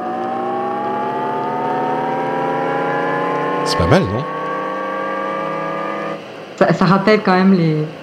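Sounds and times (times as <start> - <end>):
synthetic driving sound of an electric car: 0.0 - 6.2
speech: 3.7 - 4.4, 6.8 - 8.0.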